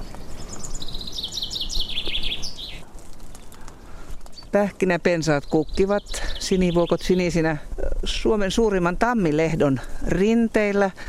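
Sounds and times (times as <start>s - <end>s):
chaffinch singing on an oak branch in an oak grove in Finland: 0.0s - 10.9s
steady outdoor hiss: 0.0s - 11.0s
speech: 4.5s - 11.0s.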